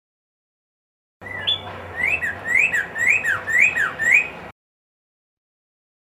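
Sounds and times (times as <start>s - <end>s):
red-crested cardinal song of swinging whistled notes: 1.2s - 4.4s.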